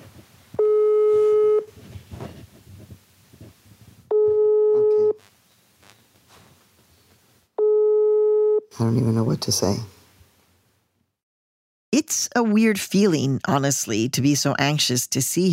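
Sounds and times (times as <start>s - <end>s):
phone ringing tone: 0.6s - 1.7s, 4.1s - 5.2s, 7.6s - 8.6s
speech: 8.8s - 10.0s, 12.4s - 15.5s.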